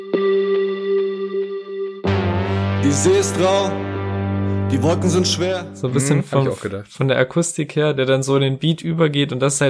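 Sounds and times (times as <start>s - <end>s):
electronic synthesizer tone resembling a sonar ping: 0.2s - 6.6s
speech: 2.8s - 3.9s, 4.7s - 9.6s.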